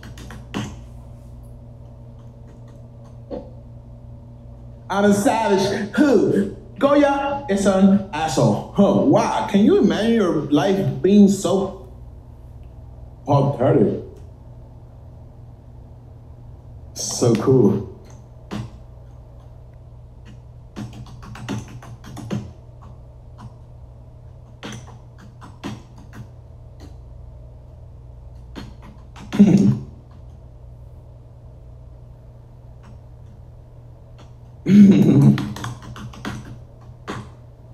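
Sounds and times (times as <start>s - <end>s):
typing on a computer keyboard: 0.0s - 0.8s, 20.2s - 23.7s, 24.4s - 27.0s, 28.4s - 30.4s, 35.2s - 37.4s
steady low hum: 0.0s - 37.7s
speech: 4.9s - 11.8s, 13.3s - 14.0s, 17.2s - 17.9s.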